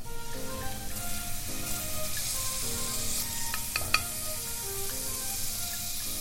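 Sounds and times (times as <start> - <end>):
shiitake mushrooms sizzling in a pan with garlic over low heat: 0.0 - 6.1
soft tones: 0.0 - 6.1.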